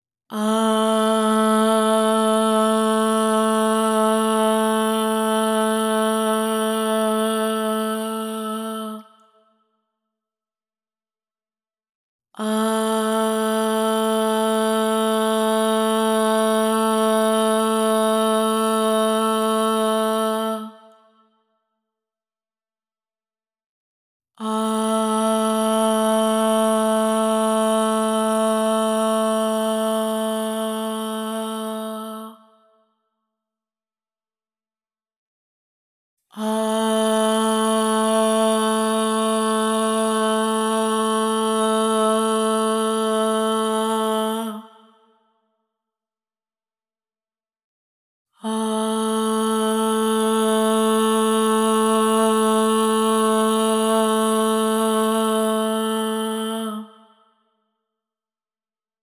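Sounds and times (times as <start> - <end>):
voice singing ahh at 432 Hz with reverb: 0.3 - 9.3, 12.4 - 21.1, 24.4 - 32.7, 36.3 - 45.1, 48.4 - 57.2.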